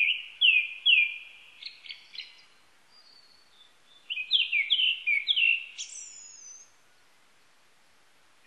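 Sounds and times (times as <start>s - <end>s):
Japanese thrush song: 0.0s - 6.8s.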